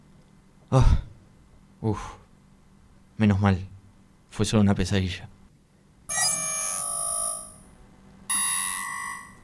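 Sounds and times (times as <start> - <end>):
speech: 0.7 - 1.1, 1.8 - 2.2, 3.2 - 3.7, 4.3 - 5.3
shrill electronic alarm ringing: 6.1 - 7.7, 8.3 - 9.4.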